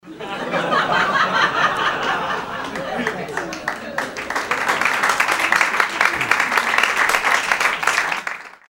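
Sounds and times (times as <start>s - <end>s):
laughter: 0.0s - 3.7s
applause: 2.0s - 8.7s.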